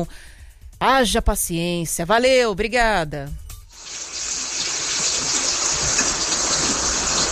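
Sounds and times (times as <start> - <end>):
speech: 0.0 - 3.4
steady heavy rain: 3.8 - 7.3.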